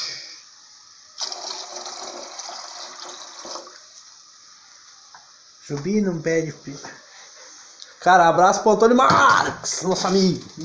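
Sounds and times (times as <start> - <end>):
quiet hiss: 0.0 - 10.6
running water: 1.2 - 4.1
speech: 5.7 - 7.0, 8.0 - 10.6.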